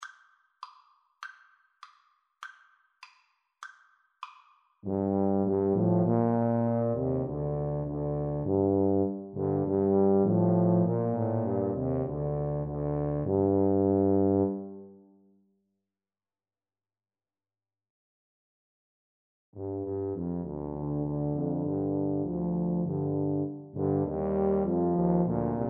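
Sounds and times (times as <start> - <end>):
tuba trio playing: 4.9 - 14.9, 19.6 - 25.6.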